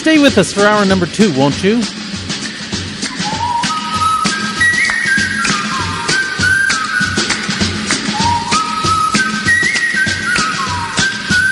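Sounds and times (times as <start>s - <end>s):
speech: 0.0s - 2.0s
backing band playing: 0.0s - 11.5s
whistled melody in a recorded song: 2.4s - 11.5s.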